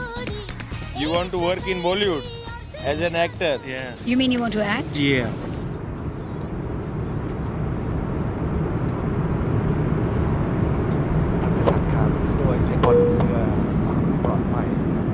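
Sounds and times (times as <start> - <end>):
speech: 1.0 - 5.5
airplane engine drone in cabin in flight: 4.3 - 15.1
chime-like tone: 12.8 - 13.6.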